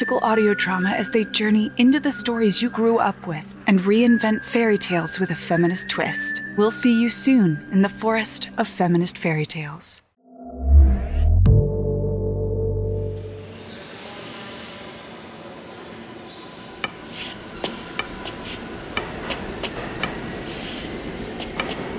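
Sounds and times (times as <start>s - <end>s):
speech: 0.0s - 10.0s
brief tonal blast: 10.4s - 14.0s
subway train departing: 13.0s - 21.9s.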